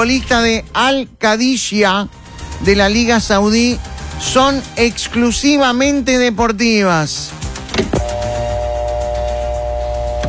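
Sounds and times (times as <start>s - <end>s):
speech: 0.0s - 8.1s
telephone ringing tone during a call: 8.0s - 10.2s.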